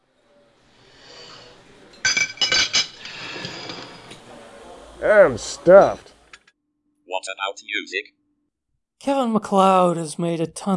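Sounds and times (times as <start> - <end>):
silverware clinking: 1.9 - 4.2
plate sliding along a kitchen counter: 3.0 - 4.2
speech: 5.0 - 6.1, 7.3 - 8.2, 9.0 - 10.7.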